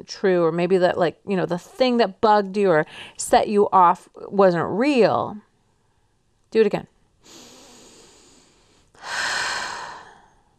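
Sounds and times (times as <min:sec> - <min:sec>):
speech: 0:00.0 - 0:05.5, 0:06.5 - 0:07.4
deliberate deep breath in and out: 0:07.2 - 0:10.5.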